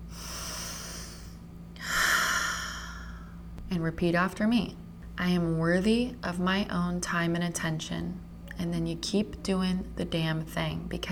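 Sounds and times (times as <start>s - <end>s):
long slow calming breath: 0.1s - 3.4s
speech: 3.7s - 11.0s.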